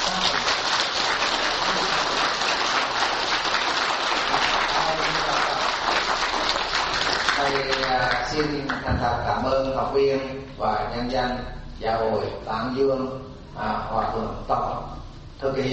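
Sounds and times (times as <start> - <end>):
large crowd applauding a lecturer at an evening lecture: 0.0 - 8.2
speech: 8.2 - 15.7.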